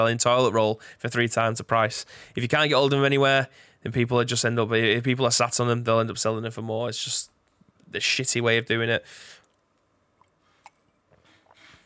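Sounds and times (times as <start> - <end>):
speech: 0.0 - 9.5
soft wet mouth clicks: 9.4 - 11.8
brief airy slurp of tea: 10.2 - 11.8.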